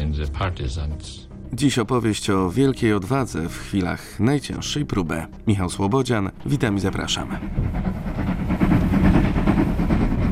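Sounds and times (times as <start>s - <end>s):
speech: 0.2s - 8.6s
railway carriage clattering on rails: 6.4s - 10.2s.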